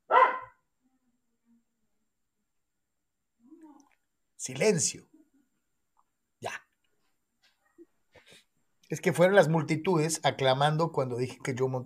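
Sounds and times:
small female dog barking at someone at the door: 0:00.0 - 0:00.6
speech: 0:04.4 - 0:05.1, 0:08.9 - 0:11.8.

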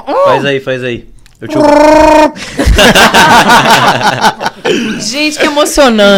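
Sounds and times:
speech: 0:00.0 - 0:06.1
voice imitating roar of a hairy monkey-like film creature: 0:01.4 - 0:02.4
laughter: 0:02.4 - 0:05.7.

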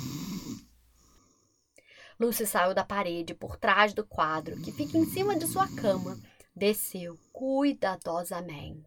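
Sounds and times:
loud rough rumbling snoring: 0:00.0 - 0:01.6, 0:04.3 - 0:06.3
speech: 0:02.2 - 0:08.8.

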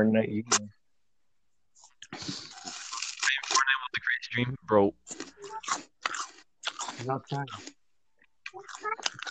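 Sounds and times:
speech: 0:00.0 - 0:00.8, 0:04.4 - 0:05.8, 0:07.0 - 0:07.8
person biting and chewing a crisp apple: 0:01.8 - 0:03.6, 0:05.1 - 0:07.8, 0:08.4 - 0:09.2.

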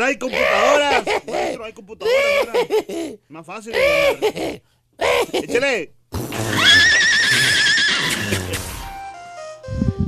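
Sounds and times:
speech: 0:00.0 - 0:06.6
laughter: 0:00.6 - 0:03.2, 0:03.8 - 0:05.6
horse neighing: 0:06.3 - 0:08.8.

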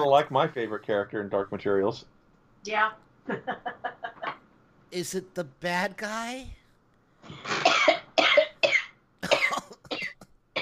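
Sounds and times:
speech: 0:00.0 - 0:03.9, 0:04.9 - 0:06.6
person coughing harshly with something caught in the throat: 0:07.4 - 0:10.6.

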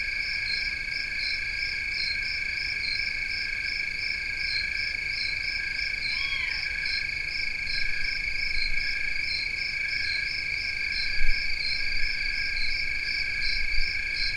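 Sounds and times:
several kinds of crickets trilling: 0:00.0 - 0:14.3
hungry fledgling Great Horned Owl begging call: 0:06.1 - 0:06.6.

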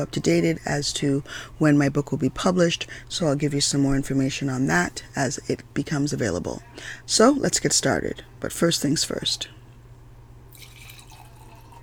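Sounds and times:
speech: 0:00.0 - 0:09.6
low steady hum: 0:00.0 - 0:11.8
wine being poured into a glass: 0:10.5 - 0:11.8.

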